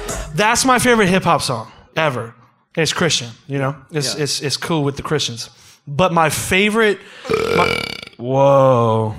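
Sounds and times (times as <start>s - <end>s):
speech: 0.4s - 9.1s
loud burps: 7.2s - 8.3s.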